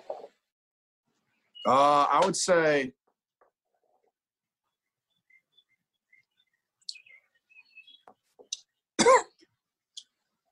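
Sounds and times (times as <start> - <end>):
speech: 1.6 - 3.0
person coughing after sipping whiskey: 9.0 - 9.4.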